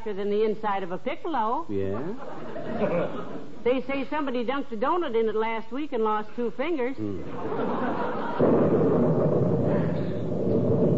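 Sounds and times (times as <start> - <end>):
speech: 0.0 - 8.9
laughter: 1.9 - 3.6, 7.2 - 8.5
thunder clap rolling into heavy rumble: 7.3 - 10.9.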